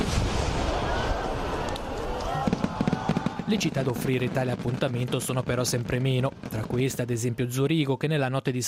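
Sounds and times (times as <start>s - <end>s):
crowd noise at a fireworks display: 0.0s - 4.8s
fireworks crackling and popping at a fireworks display: 0.0s - 7.5s
speech: 3.5s - 8.6s.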